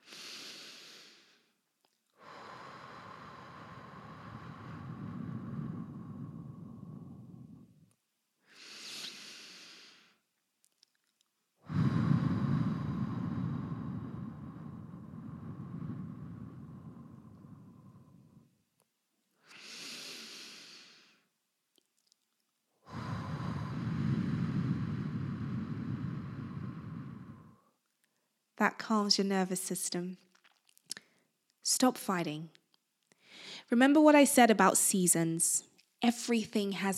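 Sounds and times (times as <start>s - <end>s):
slow deep breathing during a calming exercise: 0.0s - 1.6s, 2.2s - 10.2s, 11.6s - 18.6s, 22.8s - 27.8s, 33.1s - 33.7s
speech: 28.6s - 30.3s, 31.8s - 32.6s, 33.7s - 36.9s.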